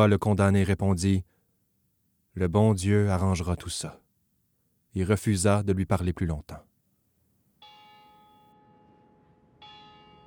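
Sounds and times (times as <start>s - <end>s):
speech: 0.0s - 1.4s, 2.4s - 4.0s, 4.9s - 6.7s
prison bell tolling: 7.6s - 10.2s.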